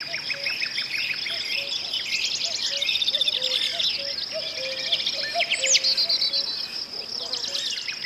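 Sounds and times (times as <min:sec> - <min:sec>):
birds singing in chorus: 0:00.0 - 0:08.0.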